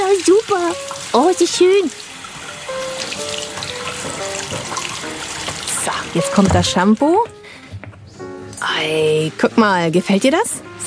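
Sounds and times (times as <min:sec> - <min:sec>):
warm water running from a tap into a wash basin during a hair wash: 0:00.0 - 0:07.0
speech: 0:00.3 - 0:02.0, 0:05.9 - 0:07.4, 0:08.6 - 0:10.6.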